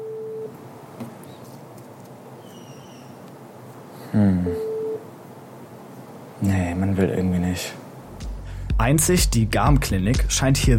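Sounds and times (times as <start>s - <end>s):
electronic telephone busy signal: 0.0s - 0.5s, 4.5s - 5.0s
speech: 4.1s - 4.6s, 7.0s - 7.8s, 8.8s - 10.7s.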